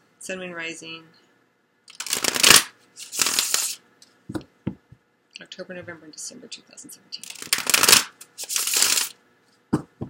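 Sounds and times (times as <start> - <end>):
speech: 0.2 - 1.2, 5.6 - 8.1
tarot cards being shuffled during a reading: 1.9 - 3.8, 7.2 - 9.2
brief soft taps: 4.3 - 5.0.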